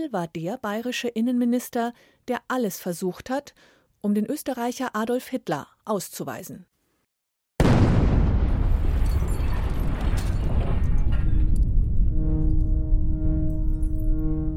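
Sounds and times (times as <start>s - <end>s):
speech: 0.0s - 6.7s
huge ammonium nitrate explosion at a chemical plant: 7.6s - 14.0s
steady tones: 11.8s - 14.5s.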